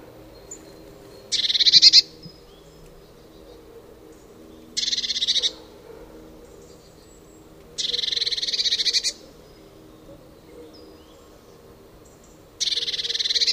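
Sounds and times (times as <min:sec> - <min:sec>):
Eurasian blue tit Cyanistes caeruleus harsh buzzy churring calls: 0:00.4 - 0:03.5, 0:04.5 - 0:05.7, 0:07.8 - 0:09.6, 0:12.6 - 0:13.5.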